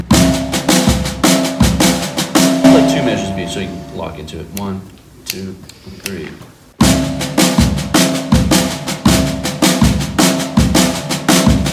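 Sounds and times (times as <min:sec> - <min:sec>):
drum kit playing a measure of a pulse pattern: 0:00.0 - 0:04.7, 0:06.8 - 0:11.7
bass drum loud ringing accented hits: 0:01.8 - 0:04.4
speech: 0:03.0 - 0:06.5.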